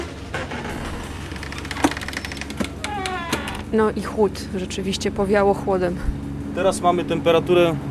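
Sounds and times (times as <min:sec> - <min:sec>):
latch clunks and rattles: 0:00.0 - 0:03.8
double doors opening: 0:00.0 - 0:03.9
steady mechanical rumble: 0:00.0 - 0:07.8
speech: 0:03.7 - 0:07.8.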